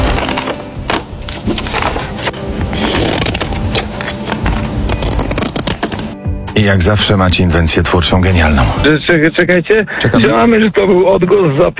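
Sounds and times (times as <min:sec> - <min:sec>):
scissors cutting through paper: 0:00.0 - 0:06.2
speech: 0:06.6 - 0:11.7.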